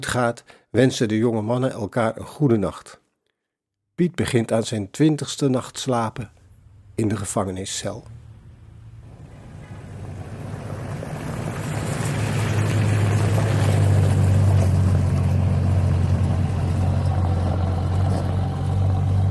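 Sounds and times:
speech: 0.0 - 3.0, 4.0 - 6.4, 7.0 - 8.2
large Wehrmacht army trucks driving along a street: 6.4 - 19.2.

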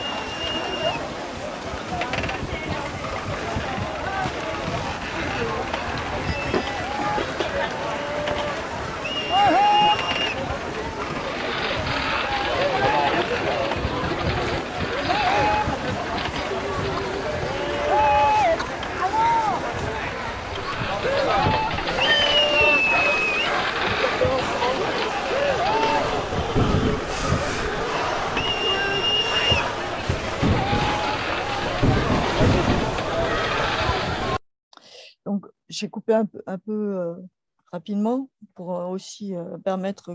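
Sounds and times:
short whistle-like calls: 0.0 - 1.0, 9.0 - 10.4, 21.9 - 23.6, 28.4 - 29.7
crowd murmur at a reconstructed busy river port: 0.0 - 34.4
water sounds around boats at a river port: 0.0 - 34.4
speech: 36.1 - 40.1.

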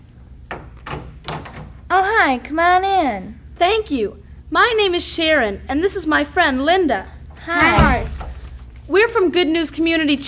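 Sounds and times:
front door opening: 0.5 - 1.8, 7.6 - 8.6
speech: 2.0 - 8.1, 8.9 - 10.2.

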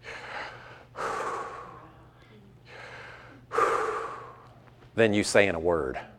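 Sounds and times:
slow deep breathing in and out: 0.0 - 2.0, 2.6 - 4.7
speech: 5.0 - 6.1.

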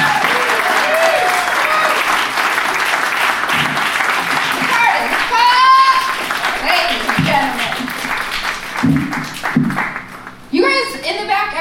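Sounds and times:
audience whoops and cheers: 0.0 - 2.2, 4.7 - 6.2
comedy show audience applause: 0.0 - 10.4.

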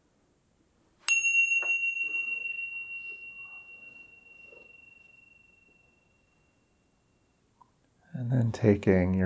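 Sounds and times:
meditation bell struck at the end of a meditation practice: 1.1 - 7.5
speech: 8.3 - 9.2.

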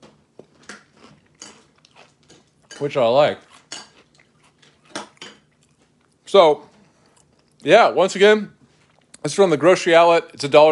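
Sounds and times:
chewing crunchy cinnamon cereal: 0.1 - 7.7, 8.6 - 9.4
speech: 2.8 - 3.5, 6.3 - 6.7, 7.6 - 8.6, 9.2 - 10.7.

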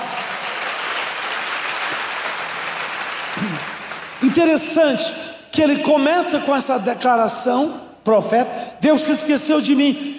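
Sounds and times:
sizable crowd applauding: 0.0 - 4.4
speech: 4.3 - 10.1.

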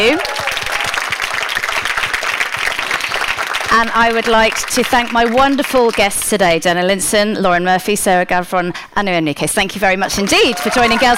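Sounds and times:
speech: 0.0 - 0.4, 3.8 - 11.1
audience applause: 0.0 - 6.0, 10.2 - 11.1.

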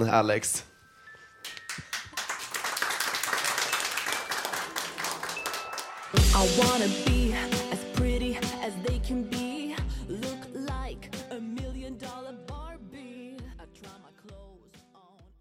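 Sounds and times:
speech: 0.0 - 0.7, 6.1 - 9.4
audience applause: 1.9 - 6.2
music with a strong beat and sustained tones: 6.0 - 15.3.

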